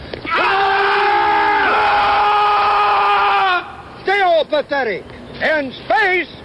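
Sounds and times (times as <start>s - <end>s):
Marine Corps battle cry yell: 0.3s - 3.8s
speech: 4.6s - 6.4s.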